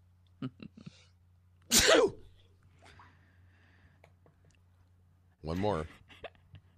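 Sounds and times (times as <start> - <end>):
speech: 0.4 - 1.0, 5.5 - 6.0
person sneezing: 1.7 - 2.4.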